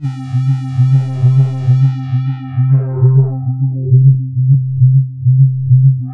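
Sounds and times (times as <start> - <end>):
synth falling tone: 0.0 - 6.1.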